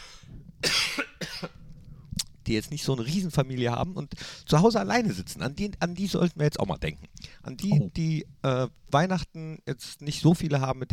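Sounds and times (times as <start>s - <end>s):
person coughing: 0.6s - 1.6s
speech: 2.5s - 10.9s.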